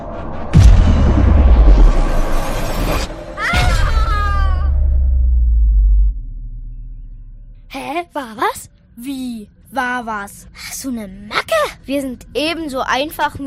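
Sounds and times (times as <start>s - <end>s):
deafening crash with a deep rumbling tail: 0.0s - 7.7s
speech: 8.2s - 13.4s.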